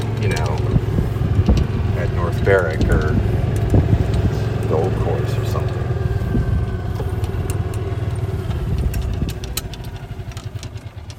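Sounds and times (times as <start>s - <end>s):
metallic clatter and ticks of a tractor: 0.0s - 11.1s
tractor engine rumbling with deep rhythmic chugging: 0.0s - 11.1s
speech: 2.5s - 3.3s.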